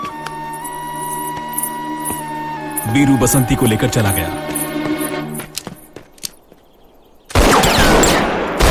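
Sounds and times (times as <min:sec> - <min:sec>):
speech: 0:02.8 - 0:04.6
continuous gunfire from bandits: 0:07.3 - 0:08.6
scattered gunshots fired by bandits: 0:07.3 - 0:08.6.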